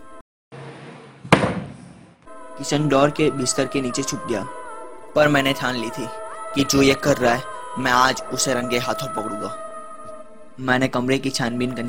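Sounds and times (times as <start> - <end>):
door slamming shut: 0.7 - 2.2
speech: 2.6 - 4.6, 5.2 - 9.6, 10.6 - 11.8.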